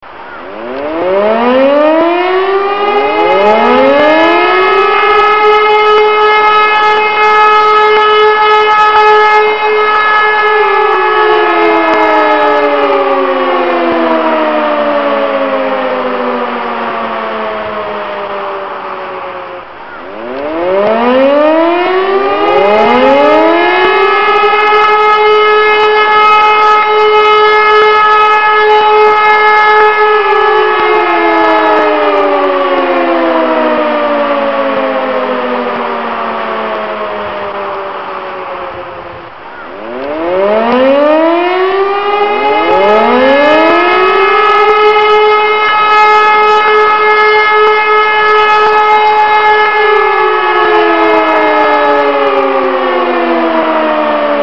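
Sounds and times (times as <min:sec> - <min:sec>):
alarm sounding: 0:00.1 - 0:54.4.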